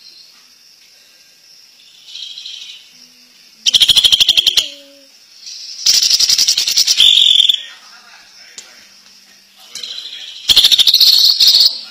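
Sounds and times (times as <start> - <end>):
Greater green leafbird song with rattling high trills: 1.8 - 2.9, 3.6 - 4.8, 5.4 - 7.6, 9.6 - 11.8.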